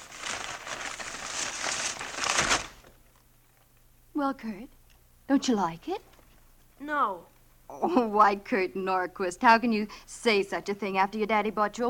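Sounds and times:
gift wrapping paper torn off a child's birthday present: 0:00.0 - 0:03.7
speech: 0:04.2 - 0:06.1, 0:06.8 - 0:11.8.

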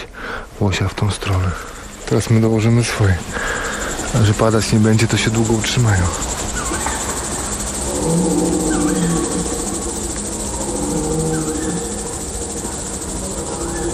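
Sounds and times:
steady hiss: 0:00.0 - 0:13.9
speech: 0:00.6 - 0:06.4
red deer stag roaring: 0:07.8 - 0:13.9.

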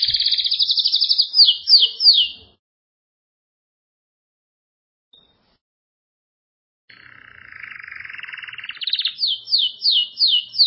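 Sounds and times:
Belgian canary song with trills and descending sweeping phrases: 0:00.0 - 0:02.6, 0:06.9 - 0:10.6.

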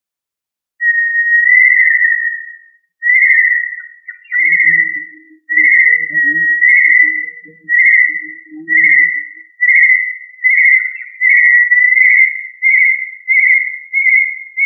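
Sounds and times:
tinamou whistles: 0:00.8 - 0:14.6.

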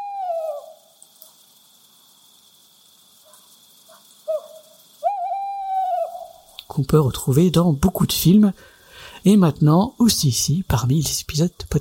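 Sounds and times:
tawny owl hooting: 0:00.0 - 0:01.2, 0:04.2 - 0:06.6
faint steady hiss: 0:00.0 - 0:11.7
speech: 0:06.8 - 0:11.7.

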